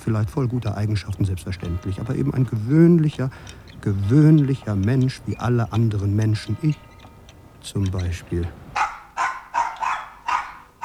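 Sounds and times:
speech: 0:00.1 - 0:06.9, 0:07.6 - 0:08.6
small dog barking: 0:08.7 - 0:10.8.

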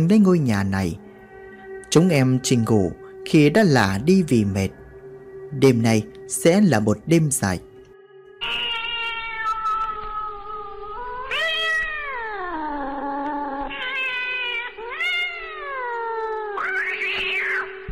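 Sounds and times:
speech: 0:00.0 - 0:01.0, 0:01.9 - 0:04.8, 0:05.5 - 0:07.7
two cats fighting and yowling at night: 0:08.4 - 0:17.9.

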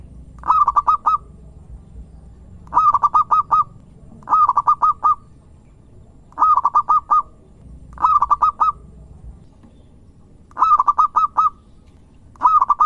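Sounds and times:
zebra dove singing quick bouncing coo notes: 0:00.0 - 0:01.5, 0:02.6 - 0:05.4, 0:06.2 - 0:09.8, 0:10.5 - 0:12.8.

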